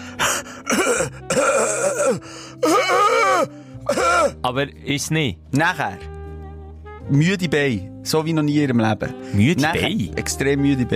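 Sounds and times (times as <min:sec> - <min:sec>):
person imitating a partner's hoarse strained cough with groaning: 0:00.7 - 0:04.3
speech: 0:04.5 - 0:06.1, 0:07.1 - 0:10.9.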